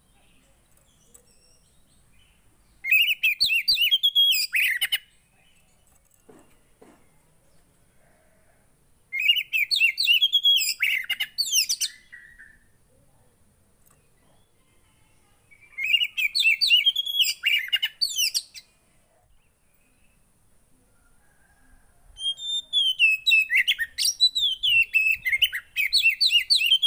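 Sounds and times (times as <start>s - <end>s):
Oriental magpie-robin singing: 0.0s - 6.6s, 9.1s - 12.8s, 15.4s - 18.7s, 22.2s - 26.8s.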